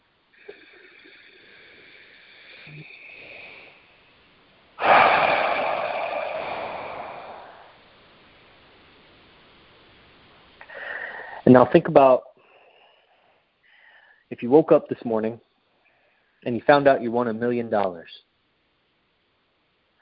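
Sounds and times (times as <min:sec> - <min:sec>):
deep breathing in and out during a guided relaxation exercise: 0:00.4 - 0:04.2, 0:04.8 - 0:08.0, 0:10.6 - 0:11.5, 0:12.4 - 0:14.3
speech: 0:02.7 - 0:03.0, 0:11.5 - 0:12.3, 0:14.4 - 0:15.5, 0:16.4 - 0:18.3.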